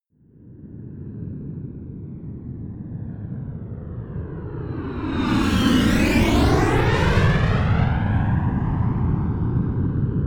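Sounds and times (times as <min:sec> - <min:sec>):
A-10 Thunderbolt military jet flyby close: 0:04.0 - 0:10.1.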